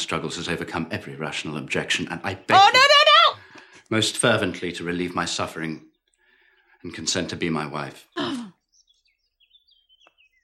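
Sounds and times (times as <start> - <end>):
speech: 0.0 - 3.0, 3.9 - 5.9, 6.8 - 8.4
birds twittering: 1.9 - 10.4.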